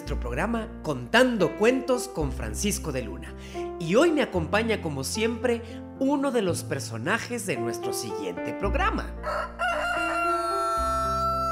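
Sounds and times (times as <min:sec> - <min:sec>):
speech: 0:00.1 - 0:09.6
rooster crowing: 0:09.2 - 0:11.5.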